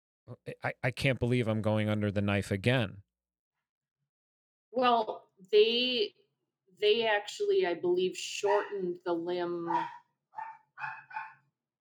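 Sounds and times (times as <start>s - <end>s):
speech: 0.3s - 3.0s, 4.7s - 6.2s, 6.8s - 11.0s
dog barking: 8.4s - 8.8s, 9.6s - 11.4s.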